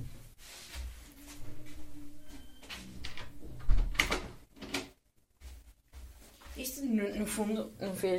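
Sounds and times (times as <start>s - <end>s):
door being pulled shut and latching: 3.1s - 4.9s
speech: 7.2s - 8.1s.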